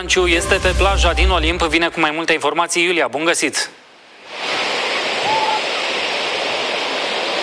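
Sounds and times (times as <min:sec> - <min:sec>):
speech: 0:00.0 - 0:03.8
rough sea surf washing onto the beach at Olimp in Romania: 0:04.1 - 0:07.4.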